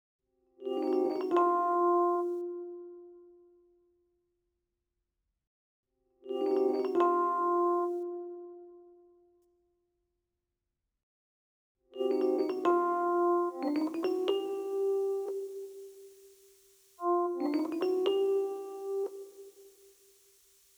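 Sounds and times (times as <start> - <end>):
electric piano melody: 0.9 - 2.9, 6.5 - 8.7, 12.1 - 16.2, 17.0 - 19.8.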